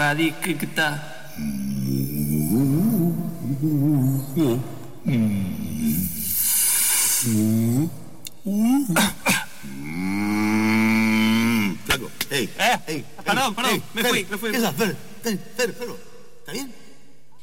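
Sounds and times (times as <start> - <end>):
speech: 0.0 - 2.7, 3.6 - 6.1, 7.2 - 9.3, 12.3 - 16.8
human voice imitating a cow with drawn-out swooping moos: 1.3 - 6.2, 7.2 - 11.9.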